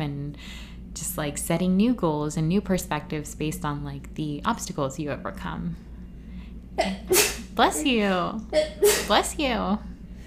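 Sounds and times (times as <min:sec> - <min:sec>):
speech: 0:01.2 - 0:05.9, 0:06.8 - 0:09.9
person sneezing loudly: 0:06.8 - 0:07.5, 0:08.6 - 0:09.2.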